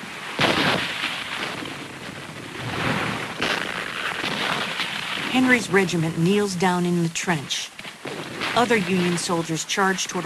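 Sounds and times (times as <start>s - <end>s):
artillery shells exploding on a Civil War battlefield: 0.0s - 6.1s, 7.8s - 9.9s
speech: 5.4s - 7.7s, 8.5s - 10.2s.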